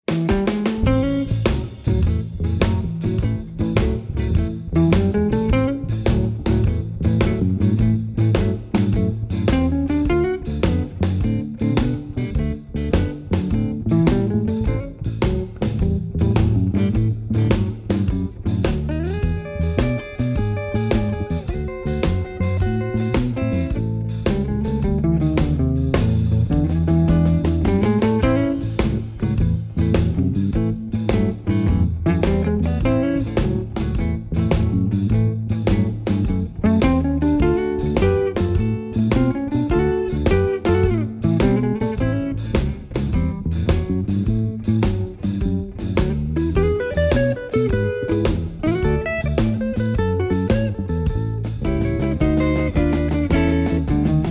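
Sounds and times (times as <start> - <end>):
blues drumming: 0.0 - 54.2.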